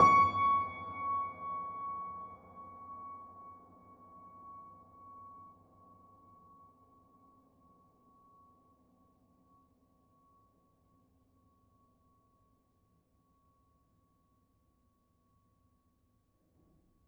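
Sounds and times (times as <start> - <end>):
piano note with sustain pedal: 0.0 - 2.3.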